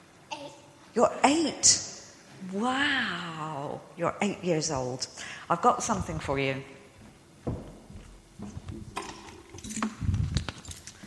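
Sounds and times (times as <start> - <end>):
speech: 1.0 - 6.8
soft rustling and knocks: 7.0 - 11.0
car keys jangling as they are handled: 9.0 - 11.0.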